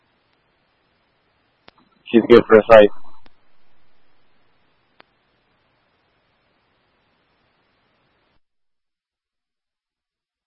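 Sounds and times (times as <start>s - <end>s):
harsh radio static from an unreadable transmission to command: 1.8s - 8.2s
speech: 2.1s - 3.0s.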